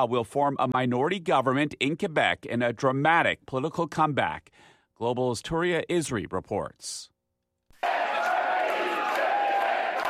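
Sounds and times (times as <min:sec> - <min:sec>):
speech: 0:00.0 - 0:07.1
dense crowd at party headquarters on election night roaring and chanting: 0:07.8 - 0:10.0.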